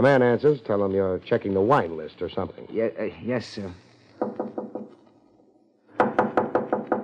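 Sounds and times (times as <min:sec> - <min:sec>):
speech: 0:00.0 - 0:04.5
knocking on a door: 0:04.2 - 0:04.9, 0:06.0 - 0:07.0.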